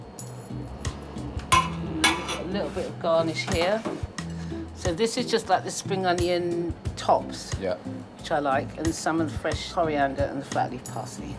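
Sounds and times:
serving utensil clinking against crockery while dishing up curry: 1.5 - 2.6
speech: 2.5 - 4.1, 4.8 - 11.3.

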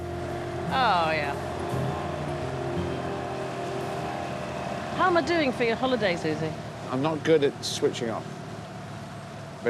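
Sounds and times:
small boat engine humming: 0.0 - 9.6
speech: 5.0 - 8.4.

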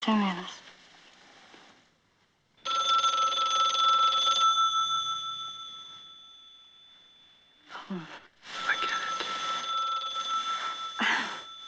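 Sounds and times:
speech: 0.1 - 0.7
telephone bell ringing: 2.6 - 11.6.

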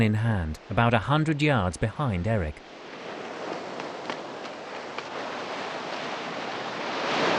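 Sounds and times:
speech: 0.0 - 2.8
surf rolling onto a beach: 2.6 - 7.3.

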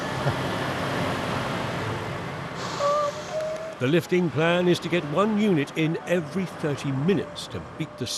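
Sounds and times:
heavy truck engine rumbling along a lane: 0.0 - 8.1
speech: 0.2 - 0.5, 3.8 - 8.1
truck air brakes squealing and hissing: 2.5 - 3.8.

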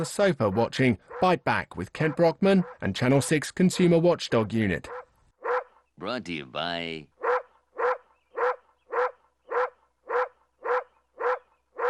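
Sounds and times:
dog barking: 0.0 - 1.3, 2.0 - 2.9, 4.9 - 5.8, 7.2 - 11.8
speech: 0.0 - 5.0, 6.0 - 7.1.

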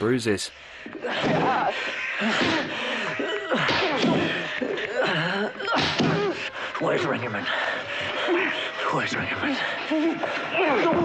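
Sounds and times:
speech: 0.0 - 2.9, 6.8 - 11.0
straining grunts and gasps: 0.7 - 11.0
punches landing in a fistfight: 1.1 - 4.6, 5.7 - 6.4.

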